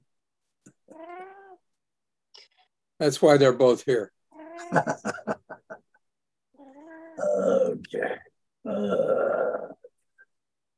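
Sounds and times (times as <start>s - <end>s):
cat meowing at snack time: 0.9s - 1.6s, 4.3s - 4.9s, 6.6s - 7.2s
speech: 3.0s - 5.4s, 7.4s - 9.6s
laughter: 4.6s - 5.9s.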